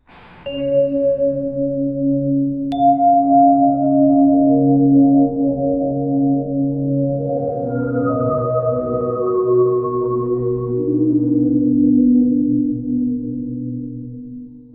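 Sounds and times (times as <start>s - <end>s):
soothing melody of underground caves: 0.5s - 14.7s.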